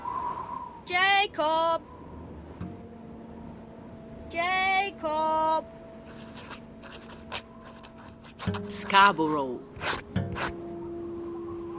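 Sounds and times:
speech: 0.9s - 2.0s, 4.3s - 5.8s, 8.5s - 9.9s
steady low hum: 1.4s - 11.7s
pen scratching on a paper envelope: 6.1s - 8.9s, 9.8s - 10.5s.

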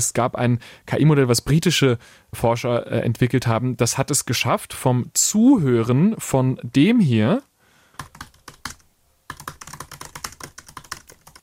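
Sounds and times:
speech: 0.0s - 8.2s
typing on a laptop keyboard: 8.0s - 11.4s.

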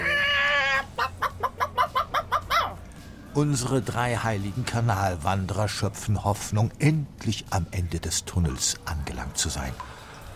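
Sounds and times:
chicken squawking: 0.0s - 2.8s
speech: 3.4s - 10.3s.

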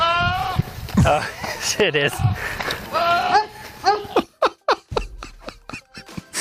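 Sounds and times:
speech: 1.0s - 3.0s
goat screaming in a meadow: 2.1s - 4.2s
laughter: 3.9s - 6.4s.

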